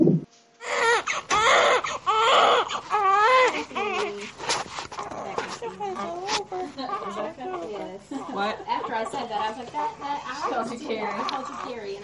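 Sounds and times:
newborn baby crying: 0.6 - 12.0.

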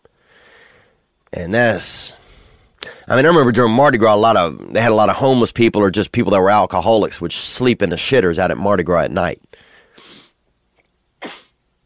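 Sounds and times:
speech: 1.4 - 2.2, 2.8 - 9.7
person clearing throat and hocking up phlegm: 11.2 - 11.6.

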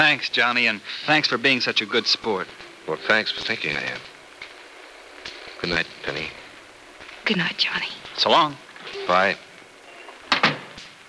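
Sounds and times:
speech: 0.0 - 4.1, 5.6 - 6.4, 7.3 - 9.5
door opening and shutting: 8.8 - 11.0.

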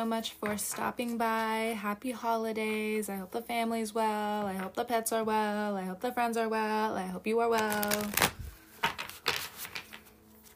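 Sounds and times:
speech: 0.0 - 8.4
deck of tarot cards being shuffled: 7.6 - 10.5.

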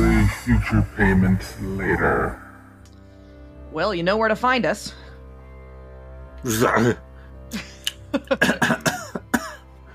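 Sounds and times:
speech: 0.3 - 2.4, 3.7 - 5.0, 6.4 - 8.8
coughing fit with heavy rasping hack and sharp coughs: 8.3 - 9.7.

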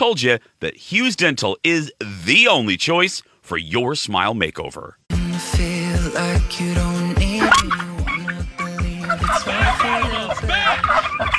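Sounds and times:
speech: 0.0 - 6.9
steady thumping beat: 5.1 - 10.8
turkeys gobbling: 7.3 - 11.3.

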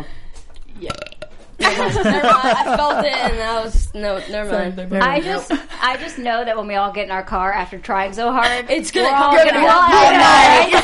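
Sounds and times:
burp: 0.8 - 1.5
laughter: 1.6 - 3.6, 9.0 - 10.8
speech: 1.8 - 10.8.

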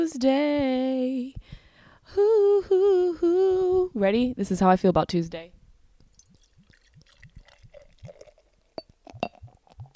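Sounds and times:
speech: 0.0 - 5.6
cocktail being poured into a glass: 6.1 - 9.9
sharp glassy clinks: 8.8 - 9.9.

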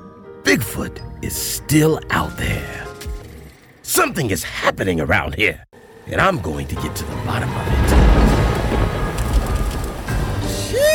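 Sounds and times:
speech: 0.5 - 3.1, 3.9 - 8.1
rain starting to fall: 7.1 - 10.9.

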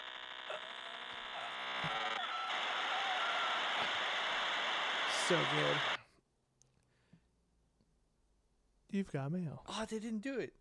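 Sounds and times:
dial-up modem connecting tones: 0.5 - 6.0
speech: 5.3 - 5.9, 8.9 - 10.6.

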